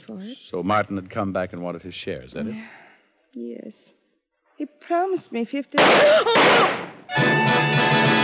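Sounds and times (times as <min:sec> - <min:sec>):
speech: 0:00.0 - 0:04.0, 0:04.6 - 0:08.1
single gunshot fired indoors: 0:05.8 - 0:07.1.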